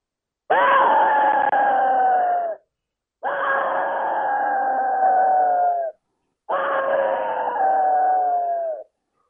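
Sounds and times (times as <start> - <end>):
Easy Axis deer game call screams: 0.5 - 2.6, 3.2 - 5.9, 6.5 - 8.8.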